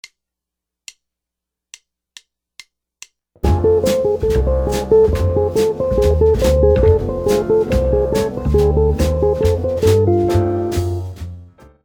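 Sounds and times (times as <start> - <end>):
instrument licks: 3.4 - 11.4.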